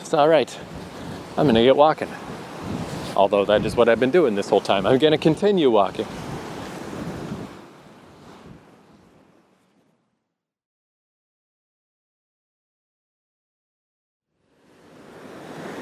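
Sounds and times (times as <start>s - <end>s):
wind noise: 0.0s - 9.3s
ocean waves breaking against a rocky outcrop: 0.0s - 9.6s, 14.5s - 15.8s
speech: 0.1s - 0.8s, 1.4s - 6.2s.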